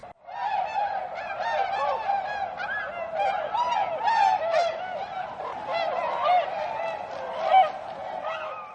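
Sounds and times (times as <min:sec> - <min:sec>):
flock of snow geese or tundra swans calling overhead: 0:00.3 - 0:08.7.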